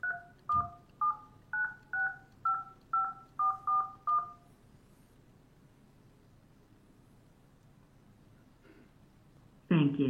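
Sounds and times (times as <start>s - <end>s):
telephone keypad tones entering a phone number on a support line call: 0.0s - 4.5s.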